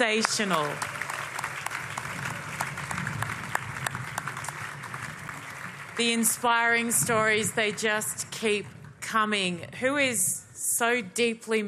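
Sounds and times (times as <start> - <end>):
speech: 0.0 - 1.0, 6.0 - 11.6
audience applause: 0.0 - 6.8.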